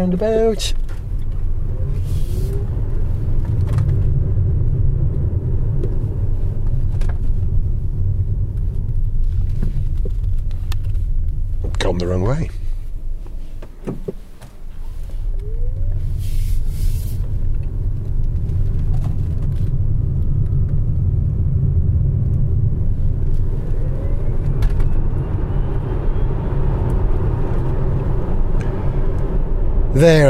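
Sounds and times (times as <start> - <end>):
speech: 0.0 - 1.0, 12.0 - 12.6, 30.0 - 30.2
loud low rumble inside a futuristic car on the move: 0.0 - 30.2
faint thin whooing tone from a futuristic car: 15.3 - 16.4, 23.5 - 26.8.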